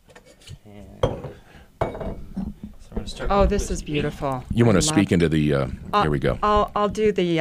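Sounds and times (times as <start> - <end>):
chilled hand-blown Pilsner glasses clinking while mixing a cocktail: 1.0 - 2.6
speech: 3.1 - 7.4.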